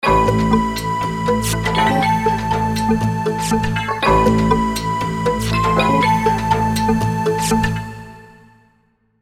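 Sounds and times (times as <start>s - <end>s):
Wavestation synthesizer: 0.0s - 9.1s.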